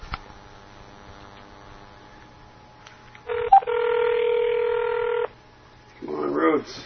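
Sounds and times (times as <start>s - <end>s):
phone line click: 3.3s - 5.3s
ringback tone: 3.3s - 5.3s.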